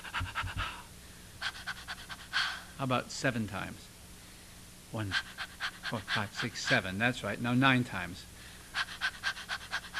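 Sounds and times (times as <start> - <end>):
person panting rapidly as a breathing drill in a singing warm-up: 0.0 - 2.8, 5.0 - 7.0, 8.4 - 9.9
speech: 2.8 - 3.9, 4.9 - 8.9.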